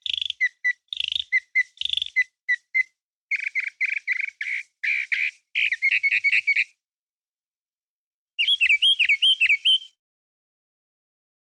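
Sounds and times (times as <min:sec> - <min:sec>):
bird chirping: 0:00.0 - 0:06.8, 0:08.4 - 0:10.0.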